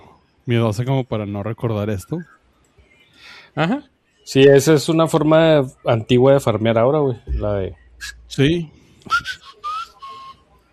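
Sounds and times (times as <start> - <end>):
speech: 0.5 - 2.4, 3.2 - 9.6
whistled musical notes made while farming aura in a video game: 7.8 - 10.7.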